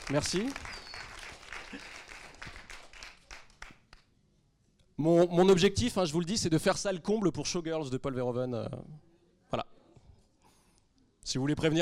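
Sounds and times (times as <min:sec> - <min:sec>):
small audience applause: 0:00.0 - 0:03.8
separate sharp claps: 0:00.0 - 0:04.1
speech: 0:00.1 - 0:00.8, 0:01.7 - 0:01.9, 0:05.0 - 0:09.7, 0:11.3 - 0:11.8.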